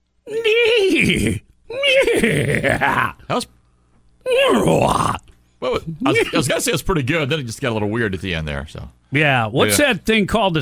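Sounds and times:
person loudly imitating a horse whinnying: 0.3 - 3.2, 4.2 - 5.3
speech: 1.0 - 1.5, 2.2 - 3.6, 4.4 - 10.5.

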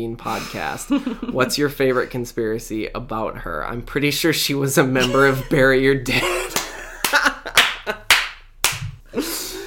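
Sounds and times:
speech: 0.0 - 6.6
people clapping: 6.5 - 9.0.

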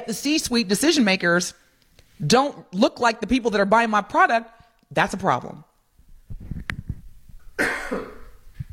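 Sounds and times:
speech: 0.0 - 1.6, 2.2 - 5.7
person coughing: 7.6 - 8.4.

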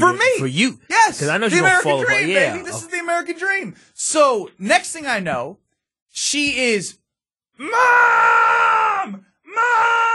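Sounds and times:
speech: 0.0 - 7.0, 7.6 - 10.1
voice imitating a child screaming for mom: 7.6 - 10.1.

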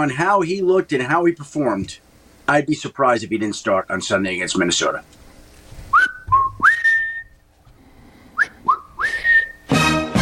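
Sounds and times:
speech: 0.0 - 5.2
person whistling rising sliding notes: 5.9 - 7.4, 8.4 - 10.1.

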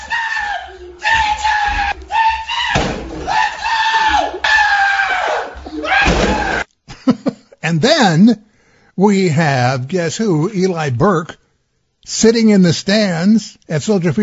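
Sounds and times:
man screaming in strained bursts: 0.0 - 6.7
heavy crashing impacts and splintering thuds of a door: 2.7 - 3.5, 6.0 - 6.6
fist punching through a door: 2.7 - 3.6, 6.0 - 6.6
speech: 7.7 - 11.4, 12.1 - 14.2.

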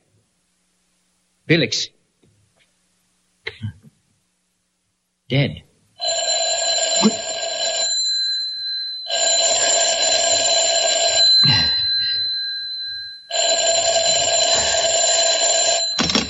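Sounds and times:
speech: 1.5 - 2.0, 5.3 - 5.7, 7.0 - 7.2
telephone ringing in long electronic bursts: 6.0 - 16.2.

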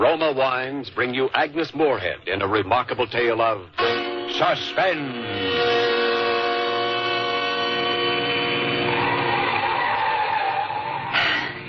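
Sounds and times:
speech: 0.1 - 5.8
car engine roaring driving fast up a steep winding mountain road: 5.2 - 11.6.

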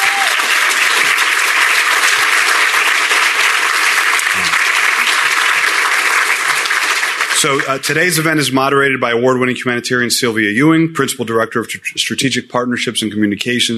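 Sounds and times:
sizeable audience applauding librarians at an event: 0.0 - 8.3
speech: 7.4 - 13.7.

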